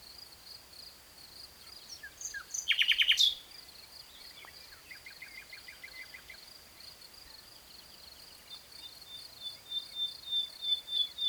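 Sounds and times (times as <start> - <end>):
common nightingale Luscinia megarhynchos singing: 1.9 - 3.4, 8.5 - 11.2.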